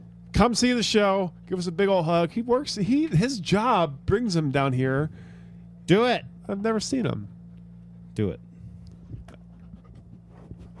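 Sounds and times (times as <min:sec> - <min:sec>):
steady low electrical hum: 0:00.0 - 0:10.7
speech: 0:00.4 - 0:05.3, 0:05.9 - 0:07.3, 0:08.2 - 0:08.5
dog panting and huffing: 0:09.0 - 0:10.7.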